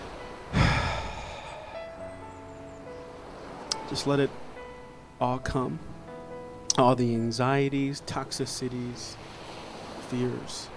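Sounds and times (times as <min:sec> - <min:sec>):
long exhale during a guided breathing exercise in a worship setting: 0:00.5 - 0:02.0
speech: 0:03.9 - 0:04.4, 0:05.2 - 0:05.9, 0:06.8 - 0:09.4, 0:10.1 - 0:10.7.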